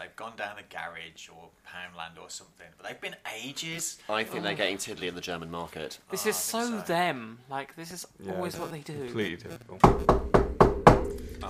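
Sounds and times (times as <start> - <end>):
speech: 0.1 - 10.4
knocking on a door: 9.8 - 11.2.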